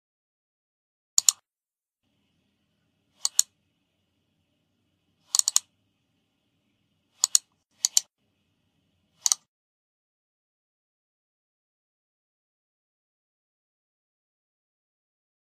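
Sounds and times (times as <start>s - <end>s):
mouse click: 1.2s - 1.4s, 3.1s - 3.6s, 5.2s - 5.7s, 7.1s - 8.1s, 9.2s - 9.5s.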